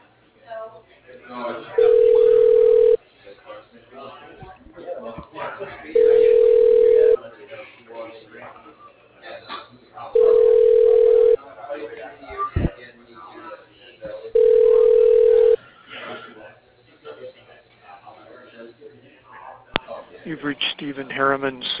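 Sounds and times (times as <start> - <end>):
talk through a phone line: 0.0 - 21.7
telephone ringback tone on a transferred call through a narrow phone line: 1.8 - 3.0, 6.0 - 7.2, 10.2 - 11.4, 14.4 - 15.6
speech: 21.4 - 21.7.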